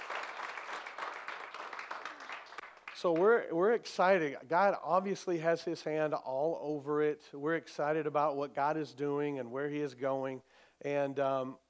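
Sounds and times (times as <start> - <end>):
church congregation clapping hands in praise during a morning service: 0.0 - 3.5
speech: 3.0 - 11.6.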